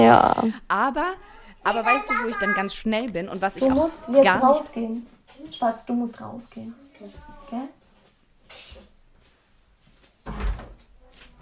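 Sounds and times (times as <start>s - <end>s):
speech: 0.0s - 7.8s
door closing with a solid thud: 10.2s - 11.4s.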